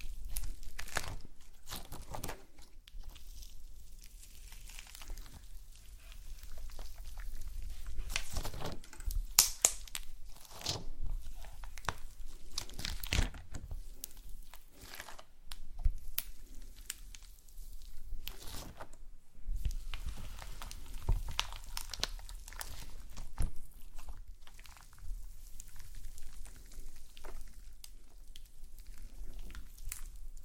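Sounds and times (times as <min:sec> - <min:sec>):
slime being squeezed and pressed: 0:00.0 - 0:30.4.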